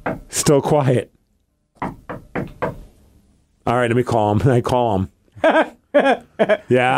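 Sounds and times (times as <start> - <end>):
firm knocks on a door: 0.0 - 0.3, 1.8 - 2.9
speech: 0.4 - 1.2, 3.7 - 6.9.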